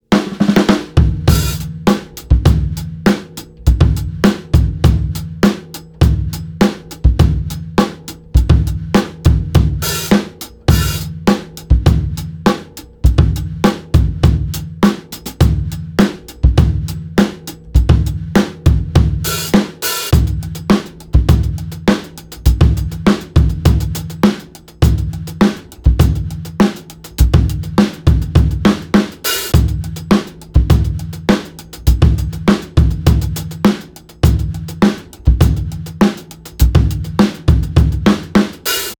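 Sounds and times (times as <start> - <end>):
motown music: 0.1 - 38.9.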